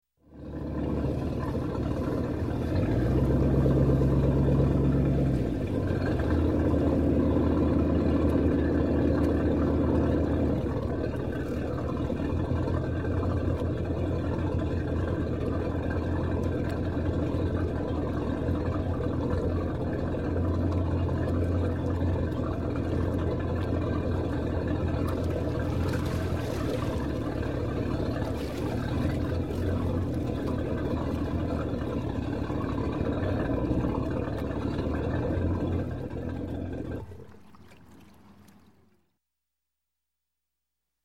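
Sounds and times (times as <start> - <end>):
inboard boat engine pulling up to a slip: 0.2 - 39.2.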